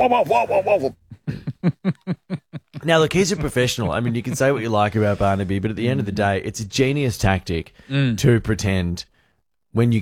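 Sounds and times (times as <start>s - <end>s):
man imitating his dog's yelps and barks: 0.0s - 1.0s
speech: 0.0s - 1.0s, 1.6s - 9.1s, 9.7s - 10.0s
laughter: 0.0s - 4.8s.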